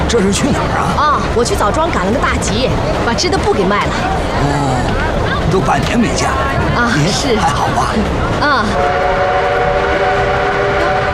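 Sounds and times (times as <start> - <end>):
continuous rumble of rail noise: 0.0 - 11.1
speech: 0.1 - 4.9, 5.5 - 9.4
train whistle as the train arrives at a station: 8.8 - 11.1.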